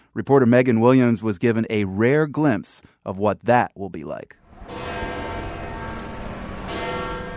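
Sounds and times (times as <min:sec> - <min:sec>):
speech: 0:00.2 - 0:04.8
large church bells of a basilica ringing in a full peal on a sunny morning: 0:04.5 - 0:07.3.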